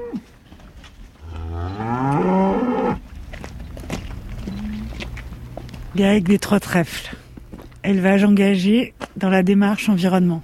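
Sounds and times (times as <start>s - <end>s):
cow mooing on a farm: 0.0s - 0.3s, 1.2s - 3.0s, 4.4s - 5.1s
faint farmyard noise: 0.0s - 10.4s
speech: 6.0s - 7.2s, 7.9s - 10.4s.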